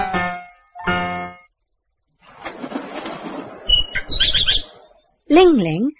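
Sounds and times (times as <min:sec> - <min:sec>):
bird wings flapping: 0:02.2 - 0:04.6
bird chirping and whistling: 0:03.7 - 0:05.1
speech: 0:05.4 - 0:05.9.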